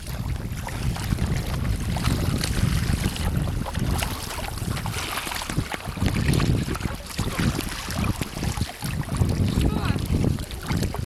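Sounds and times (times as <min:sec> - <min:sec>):
kayak: 0:00.0 - 0:11.0.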